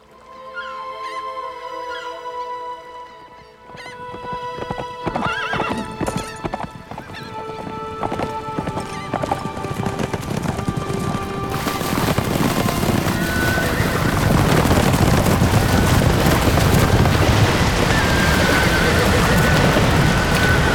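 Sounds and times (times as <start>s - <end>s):
horses neighing: 3.4s - 20.7s.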